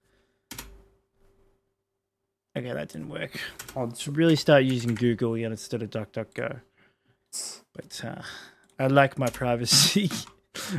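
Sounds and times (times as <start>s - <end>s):
typing on a computer keyboard: 0.5s - 0.8s, 3.5s - 5.2s, 9.1s - 10.4s
speech: 2.6s - 6.7s, 7.3s - 10.7s.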